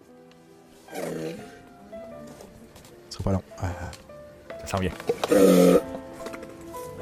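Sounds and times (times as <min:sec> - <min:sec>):
speech: 0:00.9 - 0:01.6, 0:03.2 - 0:04.1, 0:04.7 - 0:05.9
large dying zoo animal groaning breath: 0:00.9 - 0:01.7
large dying zoo animal rasping moan: 0:05.2 - 0:06.0.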